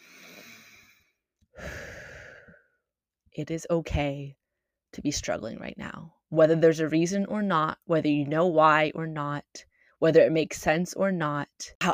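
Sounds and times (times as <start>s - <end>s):
deep breath taken slowly: 0.0s - 2.8s
speech: 3.4s - 11.9s.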